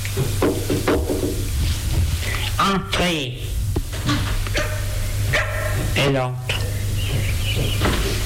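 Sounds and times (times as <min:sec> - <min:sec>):
steady low hum: 0:00.0 - 0:08.2
speech: 0:00.2 - 0:00.4, 0:02.7 - 0:03.5, 0:06.0 - 0:06.5
dogs barking: 0:04.5 - 0:08.0.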